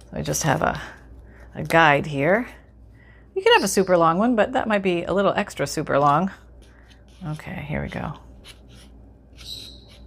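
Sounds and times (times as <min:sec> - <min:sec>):
speech: 0:00.1 - 0:01.0, 0:01.6 - 0:02.6, 0:03.4 - 0:06.4, 0:07.2 - 0:08.6
scissors cutting through paper: 0:06.0 - 0:10.0.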